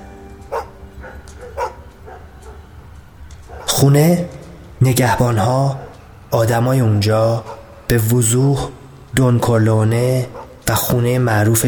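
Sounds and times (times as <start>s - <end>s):
wild dog barking aggressively in a courtyard: 0.5s - 2.6s, 3.5s - 3.8s, 5.7s - 6.1s, 7.4s - 7.8s, 10.3s - 10.7s
dog yelping: 0.5s - 2.7s, 3.5s - 3.8s, 7.4s - 7.8s
speech: 3.8s - 11.6s.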